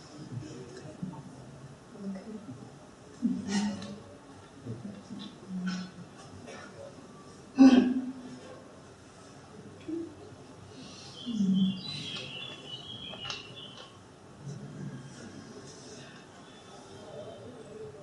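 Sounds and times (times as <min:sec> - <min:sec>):
soft low murmur: 0:00.0 - 0:18.0
faint birds chirping outdoors: 0:10.8 - 0:14.0.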